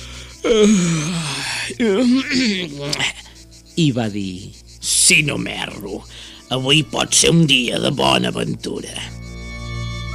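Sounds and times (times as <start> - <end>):
speech: 0.4 - 1.2, 1.8 - 3.2, 3.8 - 9.2
voice imitating a wolf's drawn-out yawn: 0.4 - 3.3.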